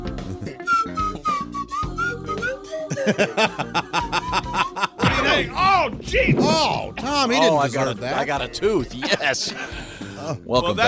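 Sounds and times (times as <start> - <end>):
slide whistle playing a short wobbly tune: 0.6 - 3.1
people laughing: 2.8 - 5.5, 8.9 - 9.9
speech: 3.0 - 4.4, 5.4 - 10.8.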